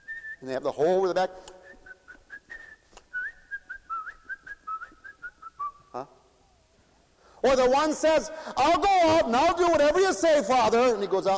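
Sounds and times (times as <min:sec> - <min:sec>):
person whistling a bouncy melody: 0:00.0 - 0:00.4, 0:01.6 - 0:05.9
speech: 0:00.4 - 0:01.6, 0:06.0 - 0:06.2, 0:07.4 - 0:11.3.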